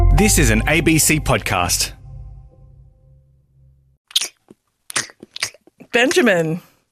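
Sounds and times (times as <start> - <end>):
speech: 0.2 - 2.0, 5.9 - 6.7
person chewing crisp iceberg lettuce: 4.1 - 5.9.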